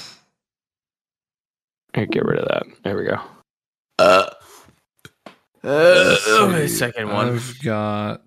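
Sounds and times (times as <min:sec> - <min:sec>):
speech: 0:02.0 - 0:03.4, 0:05.6 - 0:08.2
loud burp with a rough buzzy tone: 0:04.0 - 0:04.4, 0:05.6 - 0:07.4.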